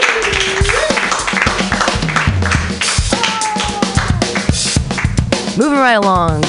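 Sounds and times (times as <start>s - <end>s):
voices and whoops from a comedy show audience: 0.0s - 1.0s, 3.1s - 4.3s
audience at a comedy show clapping: 0.0s - 5.2s
speech: 5.6s - 6.4s.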